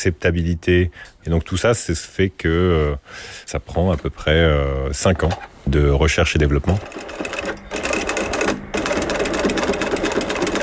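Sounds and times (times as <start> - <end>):
speech: 0.0 - 7.4
sewing machine stitching a strap with thick thread: 6.6 - 10.6.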